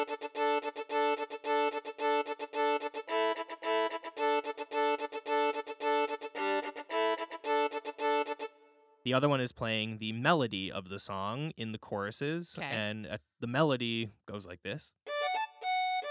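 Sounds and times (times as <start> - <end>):
solo fiddle playing a repeated harmonic accompaniment pattern: 0.0 - 9.3, 15.1 - 16.0
speech: 9.0 - 15.0.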